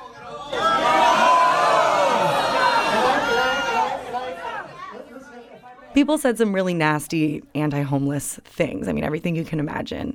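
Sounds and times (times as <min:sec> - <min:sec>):
large town hall meeting crowd shouting no: 0:00.0 - 0:05.8
speech: 0:06.0 - 0:10.1.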